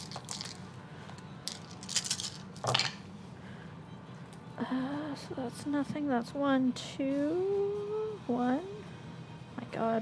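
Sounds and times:
dice clattering across a hard tabletop: 0:00.0 - 0:00.6, 0:01.4 - 0:03.0
speech: 0:04.7 - 0:08.8, 0:09.8 - 0:10.0.

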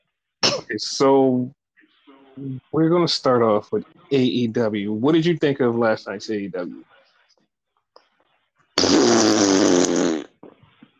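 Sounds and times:
speech: 0:00.7 - 0:01.6, 0:02.4 - 0:06.9
loud long buzzy fart: 0:08.8 - 0:10.6.

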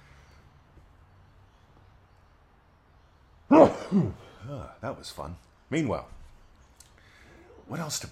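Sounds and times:
person sneezing: 0:03.5 - 0:04.7
speech: 0:03.5 - 0:06.2, 0:07.7 - 0:08.1.

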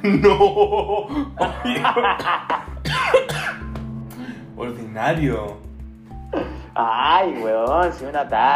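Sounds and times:
laughter: 0:00.0 - 0:02.7
speech: 0:00.0 - 0:03.6, 0:04.6 - 0:05.6, 0:06.3 - 0:08.5
person coughing hard after choking: 0:01.3 - 0:03.6.

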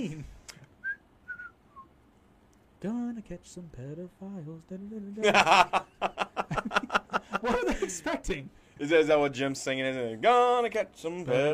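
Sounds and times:
person whistling a tune: 0:00.8 - 0:01.9
speech: 0:02.8 - 0:06.8, 0:07.4 - 0:11.5
laughter: 0:05.2 - 0:08.4.

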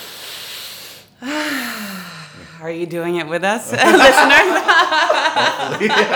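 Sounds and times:
breathy exhale turning into a soft voiced sigh: 0:00.0 - 0:02.6
deep inhale: 0:00.0 - 0:02.6
speech: 0:02.6 - 0:06.1
laughter: 0:03.7 - 0:06.1.

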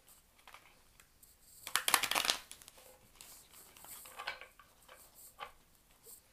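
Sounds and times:
tarot cards being shuffled: 0:01.6 - 0:04.0.

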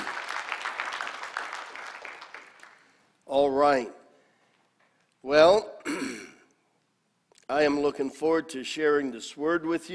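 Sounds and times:
congregation applauding: 0:00.0 - 0:03.1
speech: 0:03.3 - 0:04.0, 0:05.2 - 0:06.1, 0:07.5 - 0:09.9.

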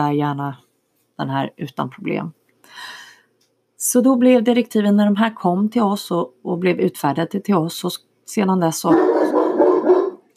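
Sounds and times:
speech: 0:00.0 - 0:00.6, 0:01.2 - 0:03.0, 0:03.8 - 0:09.4
large deaf Grand Noir dog barking in a kitchen at the mail carrier: 0:08.9 - 0:10.3.

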